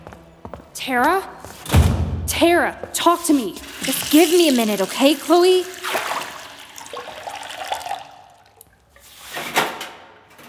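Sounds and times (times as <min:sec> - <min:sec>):
speech: 0:00.8 - 0:01.5, 0:02.3 - 0:06.1
water splashing into a bathroom sink: 0:03.2 - 0:08.8.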